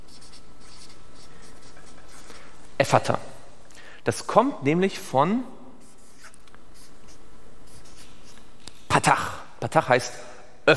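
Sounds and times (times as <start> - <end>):
word being written by hand: 0.0 - 2.8, 5.8 - 8.6
speech: 2.8 - 3.3, 4.0 - 5.6, 9.0 - 10.7.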